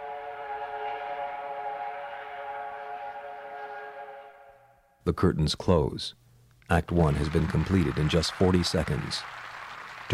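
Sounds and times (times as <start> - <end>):
passing train whistle blowing one long chord-like blast: 0.0 - 5.0
speech: 5.0 - 9.4.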